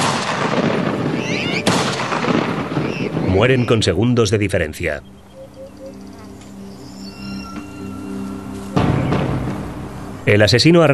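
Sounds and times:
gunshot from an execution: 0:00.0 - 0:03.2
speech: 0:03.4 - 0:05.2, 0:10.3 - 0:10.9.

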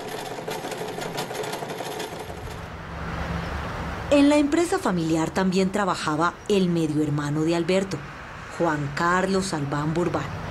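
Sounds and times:
sewing machine running in a small girdle and underwear business: 0:00.0 - 0:02.7
speech: 0:04.1 - 0:10.4.

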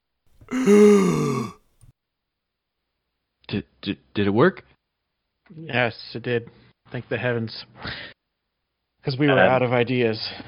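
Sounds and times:
man taking a deep voiced gasp for air after not breathing: 0:00.5 - 0:01.6
speech: 0:00.6 - 0:01.2, 0:03.5 - 0:04.8, 0:05.5 - 0:08.1, 0:09.0 - 0:10.4.

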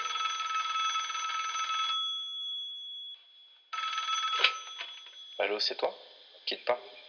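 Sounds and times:
telephone-style bell ringing in podcast jingle: 0:00.0 - 0:05.5
speech: 0:05.4 - 0:07.0.

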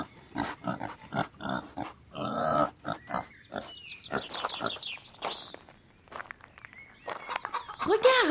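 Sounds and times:
pig grunting and snorting: 0:00.0 - 0:04.8.

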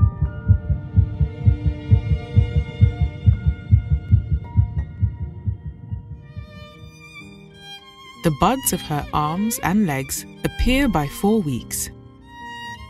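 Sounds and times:
fetal heartbeat: 0:00.0 - 0:06.8
speech: 0:08.2 - 0:12.0.

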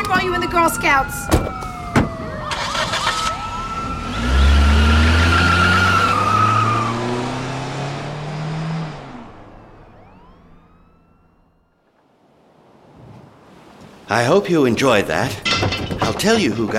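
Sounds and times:
speech: 0:00.1 - 0:01.7, 0:14.1 - 0:16.7
car tires skidding and screeching: 0:02.5 - 0:10.2
car engine revving while accelerating away: 0:02.5 - 0:10.8.

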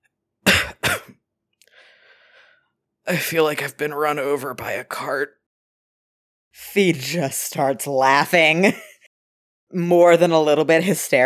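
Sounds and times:
short weak breathy coughs: 0:00.5 - 0:01.1
speech: 0:03.1 - 0:05.4, 0:06.6 - 0:08.9, 0:09.7 - 0:11.2.

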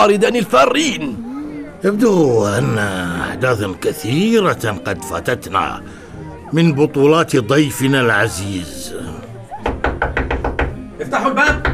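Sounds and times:
speech: 0:00.0 - 0:01.2, 0:01.8 - 0:09.1, 0:11.0 - 0:11.7
firm knocking on a door: 0:09.6 - 0:10.8, 0:11.4 - 0:11.7.

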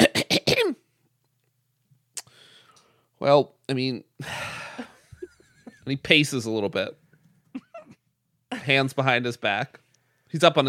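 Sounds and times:
voice imitating a ferret clearing its throat: 0:00.0 - 0:00.8
speech: 0:03.2 - 0:04.5, 0:05.9 - 0:07.0, 0:08.6 - 0:10.6.

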